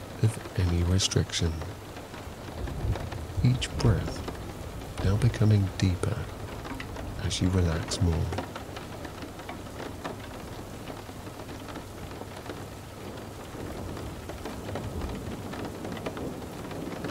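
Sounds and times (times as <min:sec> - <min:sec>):
rain falling: 0:00.0 - 0:17.0
speech: 0:00.2 - 0:01.8, 0:03.4 - 0:04.3, 0:05.0 - 0:06.4, 0:07.2 - 0:08.5
low rumble of thunder: 0:02.4 - 0:05.4, 0:11.6 - 0:17.0.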